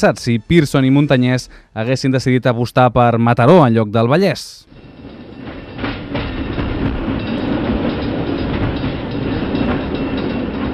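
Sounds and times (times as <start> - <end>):
speech: 0.0 - 4.7
train rumbling along rails: 4.6 - 10.7
faint rhythmic clacking of train wheels: 4.7 - 10.7.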